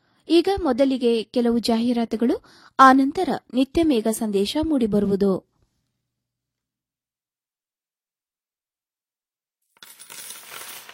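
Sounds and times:
speech: 0.3 - 5.5
coins dropping and jingling: 9.8 - 10.9.

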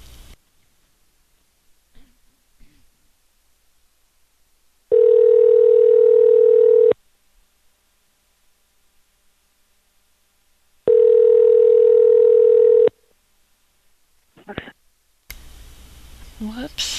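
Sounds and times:
telephone tones: 4.9 - 7.0, 10.9 - 12.9.

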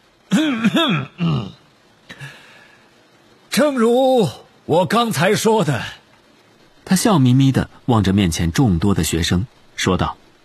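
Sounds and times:
person clearing throat in gravelly rasps: 0.3 - 1.6
speech: 0.4 - 1.3, 3.6 - 6.0, 6.9 - 10.2.

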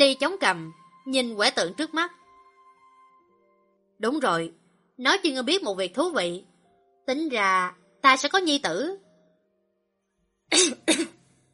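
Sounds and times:
speech: 0.1 - 2.2, 4.0 - 6.5, 7.1 - 9.0, 10.5 - 11.2
coughing: 10.5 - 11.2.

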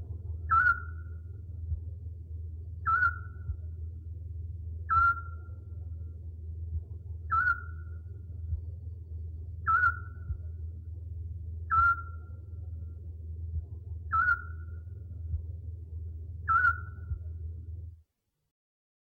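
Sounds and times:
low steady hum: 0.0 - 18.1
owl whistled hoot: 0.5 - 1.3, 2.8 - 3.5, 4.9 - 5.6, 7.3 - 8.1, 9.6 - 10.4, 11.7 - 12.4, 14.1 - 14.9, 16.4 - 17.2.

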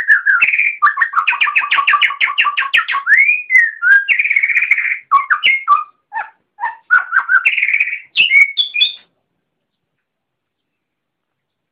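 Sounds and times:
Oriental magpie-robin song: 0.0 - 9.1.

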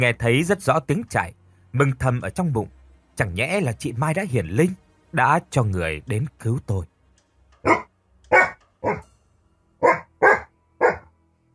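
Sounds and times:
speech: 0.0 - 6.9, 7.6 - 7.9
white-furred dog barking loudly on a rooftop at night: 7.6 - 9.0, 9.8 - 11.1.

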